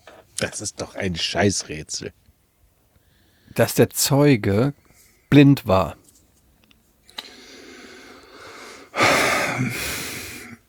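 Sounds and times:
speech: 0:00.4 - 0:02.2, 0:03.6 - 0:06.0
deep inhalation: 0:07.1 - 0:10.6.

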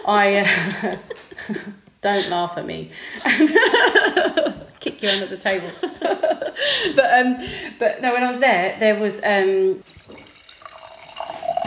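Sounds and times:
speech: 0:00.0 - 0:10.0
laughter: 0:00.4 - 0:02.3, 0:03.2 - 0:07.1
wine pouring into a glass: 0:09.8 - 0:11.6.

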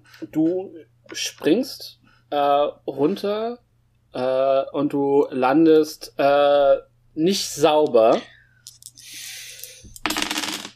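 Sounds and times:
speech: 0:00.2 - 0:08.4
dice rattling in a shake: 0:08.6 - 0:10.7
dice tumbling on a hard tabletop: 0:09.8 - 0:10.7.

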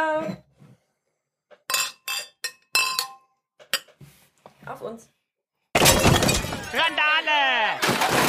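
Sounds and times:
speech: 0:00.0 - 0:00.5, 0:04.7 - 0:05.2, 0:06.7 - 0:08.2
glasses clinking in a toast: 0:01.7 - 0:03.3.

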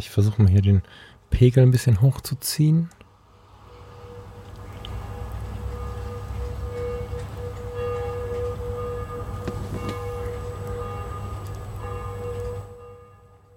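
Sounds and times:
speech: 0:00.0 - 0:03.0
outdoor hum: 0:00.0 - 0:13.5
church bells ringing: 0:03.7 - 0:13.5.

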